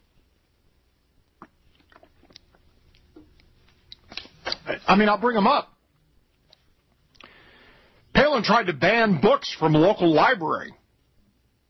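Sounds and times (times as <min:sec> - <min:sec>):
person sipping water: 0:01.2 - 0:04.7, 0:07.1 - 0:07.5
speech: 0:04.9 - 0:05.7, 0:08.4 - 0:10.8.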